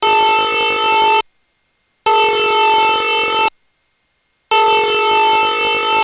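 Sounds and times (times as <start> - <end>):
Emergency Alert System alternate tone: 0.0 - 1.2, 2.1 - 3.6, 4.5 - 6.0.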